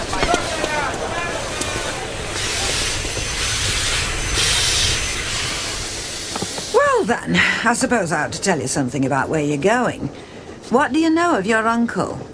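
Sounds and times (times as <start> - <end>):
steam train hissing at a station: 0.0 - 8.2
low rumble: 0.0 - 10.7
speech: 7.1 - 12.3.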